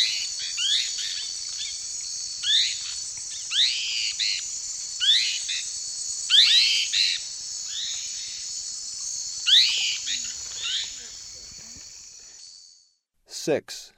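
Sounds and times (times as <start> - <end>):
continuous high-pitched insect chorus: 0.0 - 13.0
Lesser kiskadee scratchy upslurred buzzy phrases in eastern lowlands of South America: 13.3 - 13.9.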